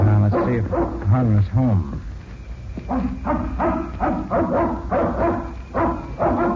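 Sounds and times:
dog barking: 0:00.2 - 0:01.1, 0:02.9 - 0:06.5
speech: 0:00.9 - 0:02.0.

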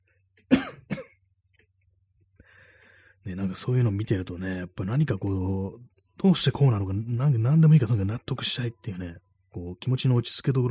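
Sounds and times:
person coughing harshly: 0:00.4 - 0:01.2
speech: 0:03.3 - 0:10.6.

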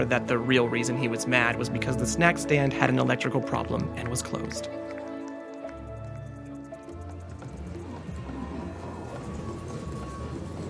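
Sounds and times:
speech: 0:00.0 - 0:05.0
many horse hooves galloping in a race: 0:04.0 - 0:10.6.

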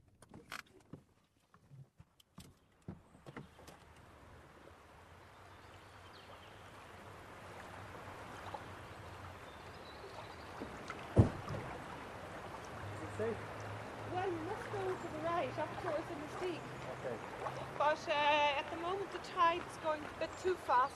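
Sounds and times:
River Nore water lapping against a boat slip near Inisteague: 0:00.0 - 0:20.9
knocks: 0:10.6 - 0:11.8.

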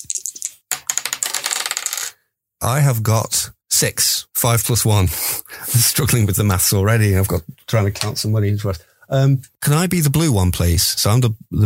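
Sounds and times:
dice rattling and clattering across a hard surface: 0:00.0 - 0:02.2
speech: 0:02.6 - 0:11.6.

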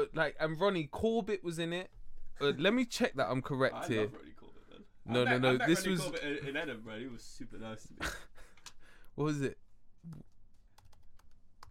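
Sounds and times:
speech: 0:00.0 - 0:04.4, 0:05.1 - 0:08.4, 0:09.2 - 0:10.3
typing on a computer keyboard: 0:10.8 - 0:11.6.

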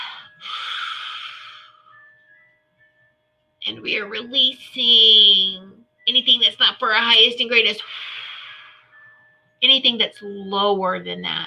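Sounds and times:
deep breath in and out: 0:00.0 - 0:02.1, 0:07.8 - 0:09.0
speech: 0:03.6 - 0:08.1, 0:09.6 - 0:11.4.

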